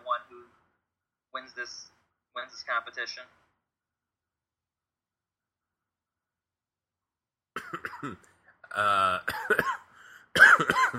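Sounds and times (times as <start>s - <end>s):
speech: 1.6s - 3.4s, 7.8s - 9.7s, 10.6s - 10.9s
man clearing his throat with a raspy rumble: 7.6s - 10.9s
man coughing: 7.6s - 10.9s.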